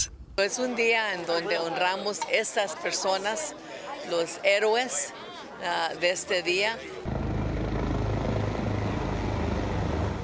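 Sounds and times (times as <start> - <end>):
speech: 0.4 - 7.1
helicopters flying overhead with rotor drone: 7.0 - 10.2.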